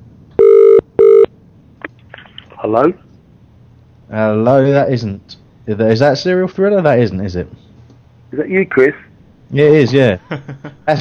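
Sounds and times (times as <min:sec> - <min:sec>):
outgoing phone call ringing tone: 0:00.4 - 0:01.3
speech: 0:02.6 - 0:03.1, 0:04.1 - 0:07.6, 0:08.3 - 0:10.9
laughter: 0:10.2 - 0:10.9.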